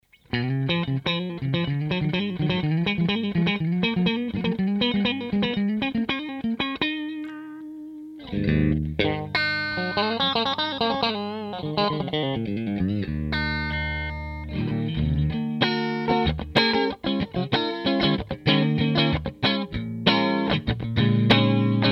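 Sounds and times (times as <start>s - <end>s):
clean electric guitar: 0.1s - 21.9s.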